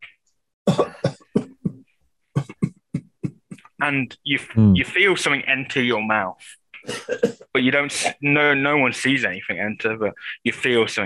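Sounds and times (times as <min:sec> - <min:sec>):
person coughing: 0:00.7 - 0:01.8, 0:06.8 - 0:08.2
speech: 0:03.8 - 0:11.0.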